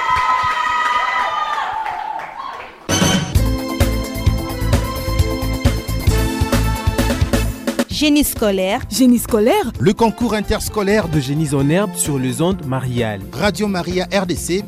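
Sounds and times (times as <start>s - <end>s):
crowd cheering and clapping: 0.0s - 7.4s
loud dense music: 2.9s - 14.6s
speech: 8.0s - 14.6s.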